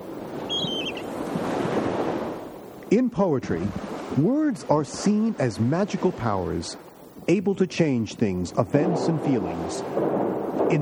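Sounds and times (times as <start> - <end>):
sea waves crashing on rocks: 0.0 - 7.5, 8.2 - 10.8
high thin seabird cry: 0.3 - 1.4
speech: 2.9 - 10.8.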